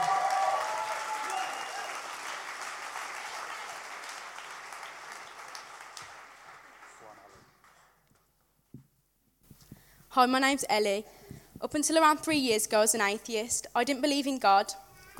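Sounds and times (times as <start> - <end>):
audience applause: 0.0 - 8.0
speech: 10.1 - 15.1.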